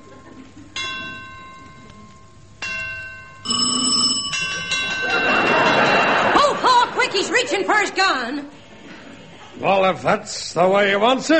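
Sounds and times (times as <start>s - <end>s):
laughter: 0.0s - 0.8s, 4.4s - 9.6s
noise: 0.0s - 11.3s
church bell striking noon: 0.8s - 6.2s
speech: 9.6s - 11.3s.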